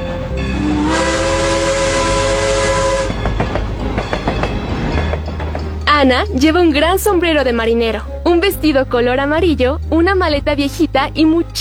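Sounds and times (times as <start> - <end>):
train whistle at a small village railway station on Prince Edward Island: 0.0 - 3.3
train wheels and cars rolling over the track: 0.0 - 6.7
speech: 6.0 - 11.5.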